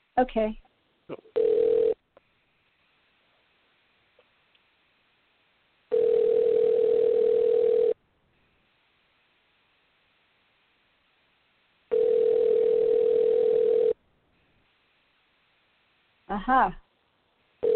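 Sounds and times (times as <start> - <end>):
speech: 0.2 - 1.3, 16.4 - 16.8
phone line ringback tone on a repeated call attempt: 1.4 - 2.0, 5.9 - 8.0, 11.9 - 14.0.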